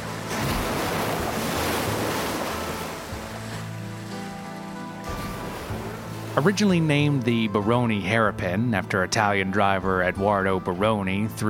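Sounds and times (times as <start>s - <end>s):
ocean waves crashing against rocks at the foot of a 100-meter drop: 0.0s - 4.2s, 5.0s - 6.8s
speech: 6.4s - 11.4s.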